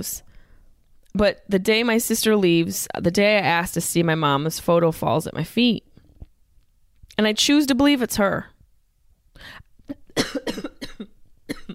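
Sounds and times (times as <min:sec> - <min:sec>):
speech: 0:00.0 - 0:00.3, 0:01.2 - 0:05.9, 0:07.2 - 0:08.5
person coughing and choking: 0:09.9 - 0:11.7.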